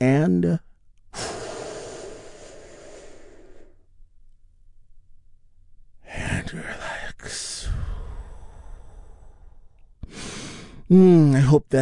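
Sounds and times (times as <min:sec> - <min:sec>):
speech: 0:00.0 - 0:00.7, 0:10.9 - 0:11.8
big deep breath drawn in during guided relaxation: 0:01.1 - 0:03.9, 0:07.6 - 0:10.9.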